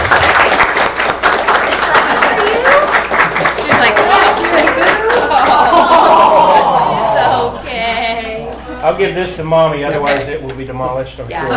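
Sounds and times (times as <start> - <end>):
audience clapping in a room: 0.0 - 7.5
laughter: 3.6 - 9.1, 11.4 - 11.5
speech: 9.0 - 11.5.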